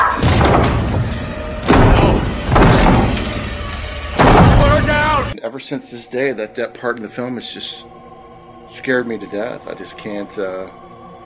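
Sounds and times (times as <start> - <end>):
chair flipping over and slamming down in film scene: 0.2 - 3.4
heavy thuds: 0.2 - 5.3
speech: 5.6 - 8.0, 8.7 - 10.9.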